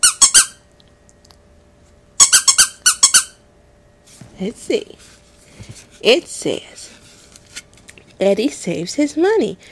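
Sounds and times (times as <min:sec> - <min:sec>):
small toy squeaker in a children's book squeaking: 0:00.0 - 0:00.6, 0:02.2 - 0:03.4
speech: 0:04.4 - 0:07.0, 0:08.2 - 0:09.7.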